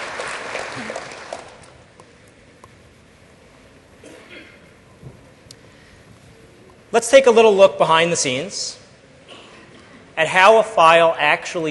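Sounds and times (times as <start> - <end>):
small audience applause: 0.0 - 1.8
speech: 7.0 - 8.8, 10.2 - 11.7.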